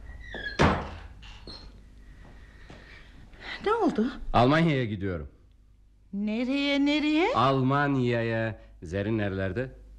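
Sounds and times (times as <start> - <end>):
door swinging shut with a solid thunk: 0.0 - 1.8
speech: 3.6 - 5.4, 6.1 - 9.8.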